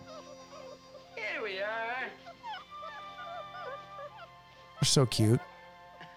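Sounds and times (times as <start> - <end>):
hound puppies whimpering and yipping: 0.0 - 1.1, 2.2 - 4.7
speech: 4.8 - 5.5.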